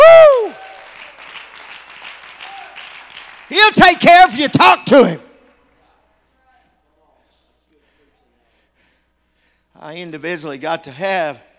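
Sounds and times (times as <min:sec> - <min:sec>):
crowd clapping: 0:00.3 - 0:04.1
speech: 0:03.5 - 0:05.2, 0:09.8 - 0:11.5.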